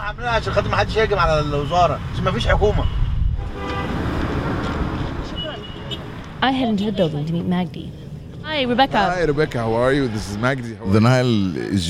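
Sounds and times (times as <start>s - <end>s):
busy street traffic in Cairo rumbling: 0.0s - 11.8s
speech: 0.1s - 3.0s, 6.4s - 11.8s
car horns honking in Cairo street traffic: 1.0s - 7.2s.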